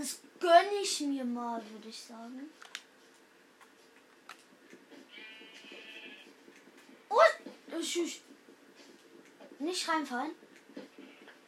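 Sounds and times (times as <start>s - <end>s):
speech: 0.0s - 2.8s, 7.1s - 8.3s, 9.6s - 10.4s
faint clicks and ticks: 2.6s - 11.4s
video game sheep bleat: 5.1s - 6.3s.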